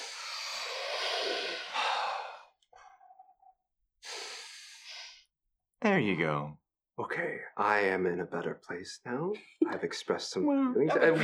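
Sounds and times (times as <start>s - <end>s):
deep breaths: 0.0s - 3.3s, 4.0s - 5.3s
speech: 6.0s - 11.2s
laughter: 10.8s - 11.2s.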